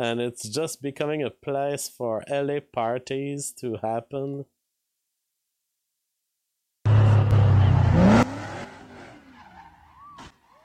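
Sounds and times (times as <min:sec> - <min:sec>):
speech: 0:00.0 - 0:04.6
car tires squealing in a burnout on a bridge in Los Angeles: 0:07.3 - 0:10.6.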